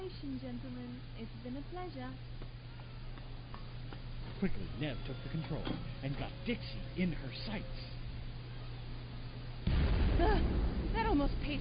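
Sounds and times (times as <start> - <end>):
speech: 0.1 - 2.6, 4.4 - 8.0, 10.2 - 11.5
heavy explosion: 9.6 - 11.5
low rumble: 9.6 - 11.5.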